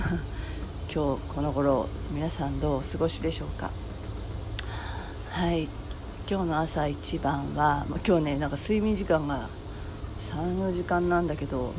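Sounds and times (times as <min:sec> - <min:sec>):
person laughing: 0:00.0 - 0:00.4
cicadas droning outdoors in cooling weather: 0:00.0 - 0:11.7
speech: 0:01.0 - 0:03.9, 0:05.4 - 0:09.6, 0:10.2 - 0:11.7.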